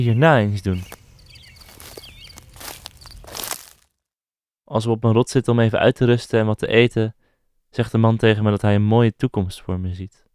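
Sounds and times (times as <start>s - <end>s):
speech: 0.0s - 1.0s, 4.7s - 10.2s
small birds chirping faintly: 0.0s - 3.4s
footsteps of two people crunching on an outdoor path: 0.0s - 4.0s.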